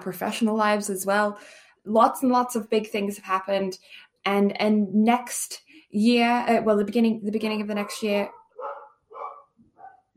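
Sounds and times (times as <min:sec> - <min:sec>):
speech: 0:00.0 - 0:08.4
dog barking sharply: 0:08.3 - 0:10.1.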